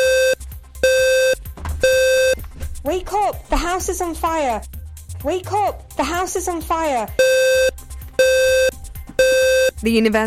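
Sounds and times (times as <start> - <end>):
standard smoke detector alarm beeping: 0.0 - 2.5, 7.2 - 9.8
speech: 2.9 - 7.7, 9.8 - 10.2.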